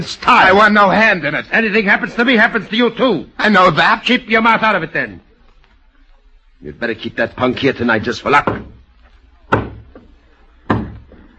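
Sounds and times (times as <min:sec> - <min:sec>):
speech: 0:00.0 - 0:05.3, 0:06.6 - 0:08.8
heavy knocking on a door: 0:08.4 - 0:08.8, 0:09.5 - 0:10.1, 0:10.7 - 0:11.1.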